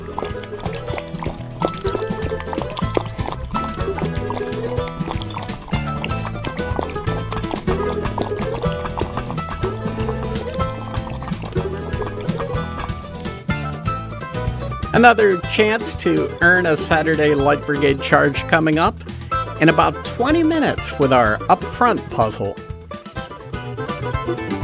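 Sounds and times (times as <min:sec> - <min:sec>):
water pouring and splashing: 0:00.0 - 0:13.8
speech: 0:15.0 - 0:19.0, 0:19.6 - 0:22.6, 0:24.3 - 0:24.5.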